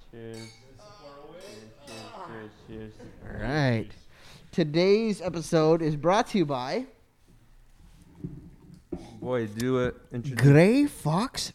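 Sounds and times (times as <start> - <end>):
speech: 0.1 - 7.0, 9.2 - 11.5
glasses clinking together in a toast: 0.2 - 2.3.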